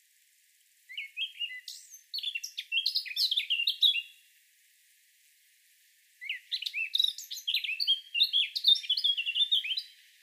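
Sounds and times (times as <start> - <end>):
Eurasian blackcap Sylvia atricapilla warbling song: 0.9 - 4.2, 6.2 - 10.0.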